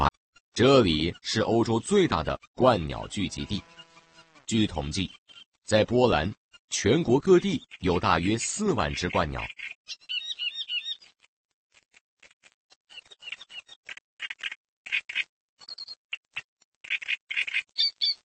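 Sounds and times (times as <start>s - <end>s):
speech: 0.6s - 3.8s, 4.5s - 10.2s
reed warblers chirping and trilling in tall reeds: 0.7s - 6.2s, 6.8s - 11.1s, 16.8s - 18.2s.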